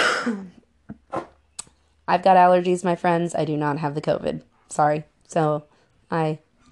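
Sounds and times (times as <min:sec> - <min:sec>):
harsh phlegmy smoker's cough: 0:00.0 - 0:00.6
speech: 0:00.2 - 0:00.6, 0:02.1 - 0:06.4.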